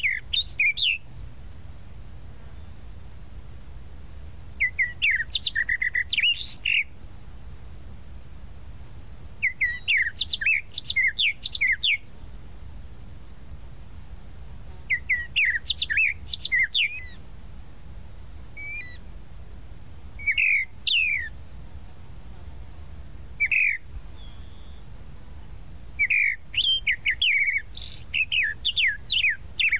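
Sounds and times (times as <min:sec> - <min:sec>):
tropical mockingbird song: 0:00.0 - 0:01.1, 0:04.6 - 0:07.0, 0:09.2 - 0:12.4, 0:14.8 - 0:17.2, 0:18.0 - 0:19.1, 0:20.1 - 0:21.4, 0:23.4 - 0:29.7
soft background hum: 0:00.0 - 0:29.7.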